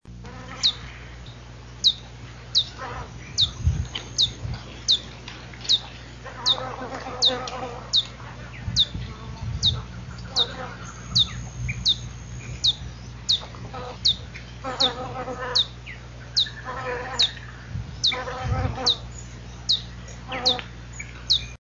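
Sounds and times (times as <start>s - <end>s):
ruby topaz hummingbird: 0.2s - 21.5s.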